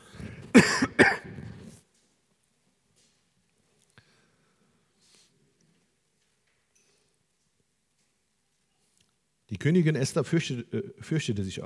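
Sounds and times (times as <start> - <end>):
person coughing: 0.5 - 1.5
speech: 0.6 - 1.2, 9.6 - 11.6.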